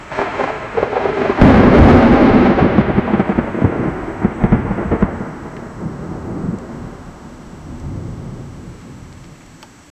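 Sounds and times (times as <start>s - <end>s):
loud realistic lightning strike: 0.0s - 9.6s.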